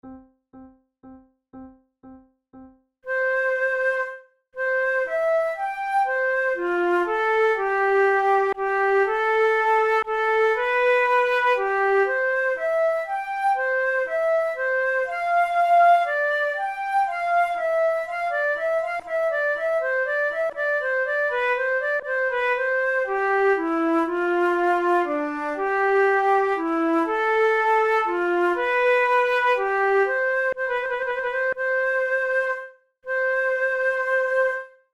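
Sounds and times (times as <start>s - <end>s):
flute prelude: 3.1s - 34.9s.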